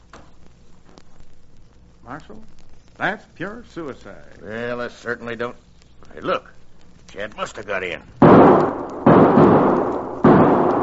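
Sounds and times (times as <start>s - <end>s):
speech: 2.1s - 8.2s
gunshots in a western-style radio drama near a barn: 8.2s - 10.8s.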